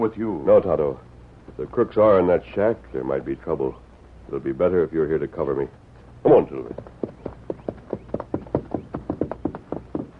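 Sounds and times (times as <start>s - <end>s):
speech: 0.0s - 7.2s
horse hooves clip-clopping at a brisk trot: 6.3s - 10.1s.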